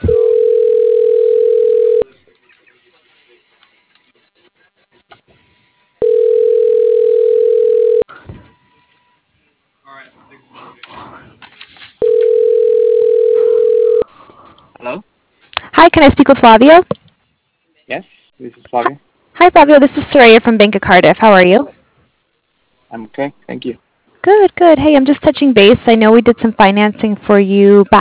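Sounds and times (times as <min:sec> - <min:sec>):
telephone ringing tone after dialing: 0:00.0 - 0:02.1, 0:06.0 - 0:08.1, 0:12.0 - 0:14.0
speech: 0:16.0 - 0:17.0, 0:17.9 - 0:21.8, 0:22.9 - 0:27.9.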